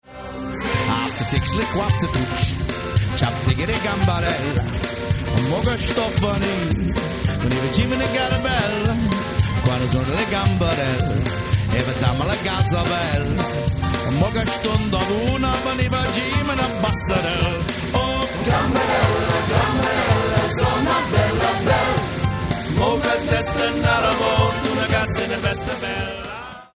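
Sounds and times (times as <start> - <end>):
slow Italian song: 0.0 - 26.7.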